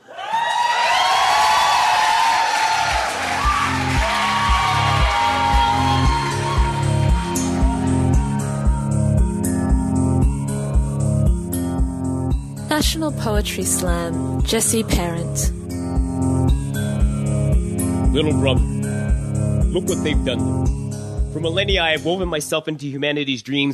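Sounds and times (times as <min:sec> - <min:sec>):
crowd cheering and whooping after a poem: 0:00.0 - 0:08.8
music with a steady bass beat: 0:03.5 - 0:13.0, 0:14.2 - 0:22.4
speech: 0:13.1 - 0:15.6, 0:18.2 - 0:18.7, 0:19.7 - 0:23.7.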